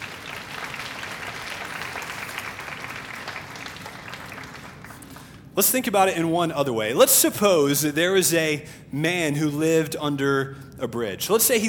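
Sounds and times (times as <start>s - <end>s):
audience applause: 0.0s - 5.4s
speech: 5.6s - 11.6s.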